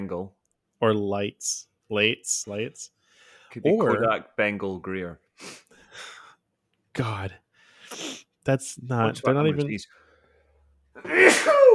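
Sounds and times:
speech: 0.0 - 6.1, 7.0 - 10.0, 11.0 - 11.7
person sneezing: 11.0 - 11.7.

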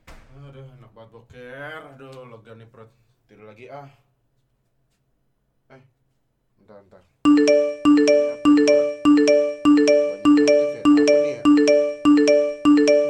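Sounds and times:
speech: 0.5 - 4.1, 5.7 - 6.0, 6.6 - 10.0
phone notification chimes: 7.3 - 13.0.

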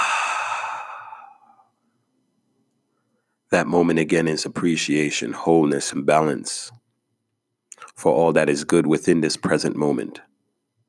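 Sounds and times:
deep breath exhale: 0.0 - 1.7
speech: 3.5 - 6.8, 8.0 - 10.3.

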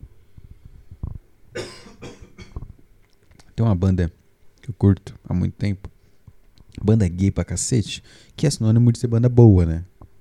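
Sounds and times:
harsh coughs: 1.6 - 2.6
speech: 3.6 - 5.9, 6.8 - 9.9
breaths: 6.0 - 6.4, 8.0 - 8.4.

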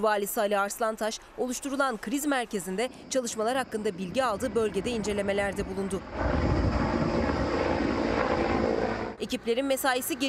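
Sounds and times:
speech: 0.0 - 6.6, 9.2 - 10.2
helicopter flying over forest fire: 2.2 - 10.2.

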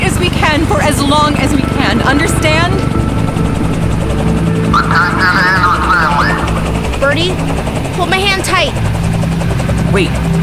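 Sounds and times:
helicopter landing nearby with rotor rumble and engine drone: 0.0 - 10.4
warbling high-pitched tone: 0.8 - 8.7
speech: 7.1 - 9.0, 9.9 - 10.4.

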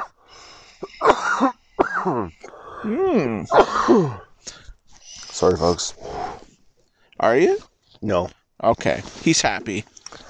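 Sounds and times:
person coughing: 0.8 - 2.6, 3.5 - 4.2
throat clearing: 0.8 - 4.3
speech: 1.4 - 4.6, 5.4 - 6.2, 7.2 - 10.2
person groaning: 2.1 - 4.2.

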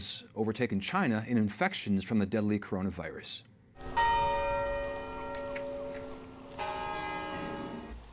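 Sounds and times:
speech: 0.0 - 3.5
church bell tolling in Madrid Spain on a day of mourning: 3.8 - 8.0.

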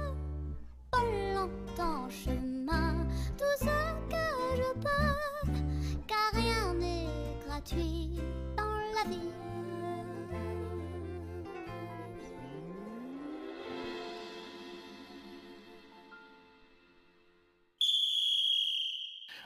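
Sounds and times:
music: 0.0 - 17.8
referee's whistle blast: 17.8 - 19.4.

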